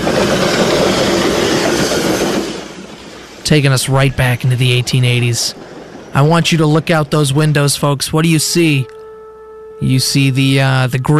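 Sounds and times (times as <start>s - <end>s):
train rumbling and clattering along rails: 0.0s - 9.0s
speech: 3.5s - 9.0s, 9.8s - 11.1s.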